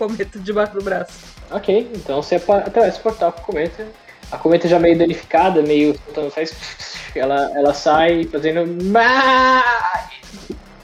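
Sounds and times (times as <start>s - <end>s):
speech: 0.0s - 10.6s
person imitating a goat bleat: 8.8s - 10.2s.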